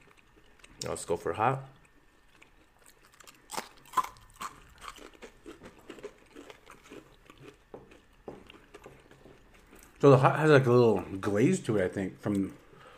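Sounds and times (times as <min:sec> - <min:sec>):
crunchy medium-heat beef jerky being bitten and chewed: 0:00.0 - 0:10.3
speech: 0:00.8 - 0:01.8, 0:10.0 - 0:12.6.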